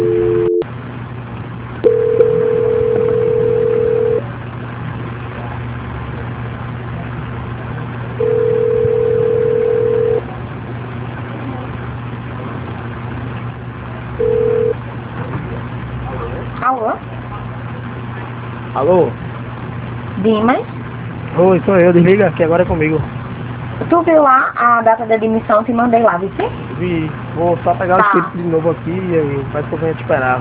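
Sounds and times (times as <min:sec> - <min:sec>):
telephone tones on a phone line during a call transfer: 0:00.0 - 0:00.6, 0:01.8 - 0:04.2, 0:08.2 - 0:10.2, 0:14.2 - 0:14.8
low constant hum: 0:00.0 - 0:30.3
speech: 0:21.6 - 0:23.2, 0:23.9 - 0:30.3.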